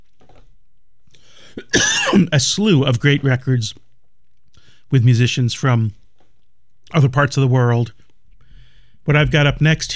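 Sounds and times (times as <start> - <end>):
person coughing: 1.5 - 2.4
speech: 2.2 - 3.8, 4.9 - 6.0, 6.9 - 8.0, 9.0 - 9.9.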